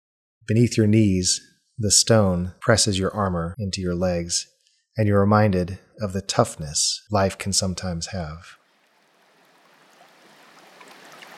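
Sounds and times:
speech: 0.5 - 8.6
water tumbling and splashing in a garden: 8.6 - 11.3.

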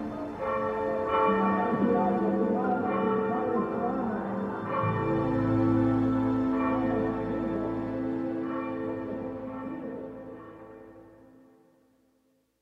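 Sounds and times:
church bells ringing for a church service in Mexico on Mother's Day: 0.0 - 11.3.

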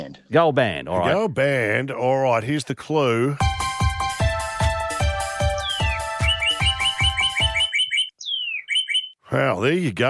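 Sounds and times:
speech: 0.3 - 3.5, 9.3 - 10.0
steady thumping beat: 3.4 - 7.7
bright bird chirps and rising tweets: 5.4 - 9.3.

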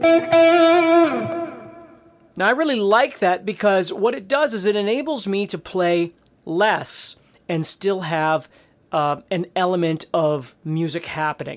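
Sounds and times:
speech: 0.0 - 1.4, 2.4 - 11.5
electric guitar in C sharp minor with reverb and delay: 0.0 - 2.4.

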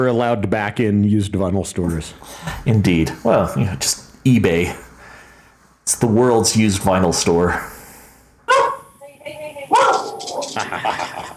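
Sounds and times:
speech: 0.0 - 4.9, 5.9 - 7.8, 10.6 - 11.1
dog barking: 8.5 - 8.9, 9.7 - 10.4
laughter: 10.1 - 11.3.

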